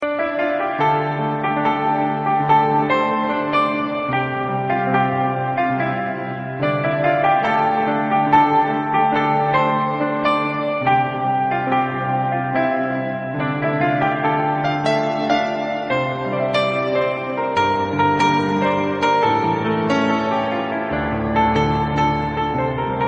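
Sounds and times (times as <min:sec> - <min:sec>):
piano playing: 0:00.0 - 0:23.0.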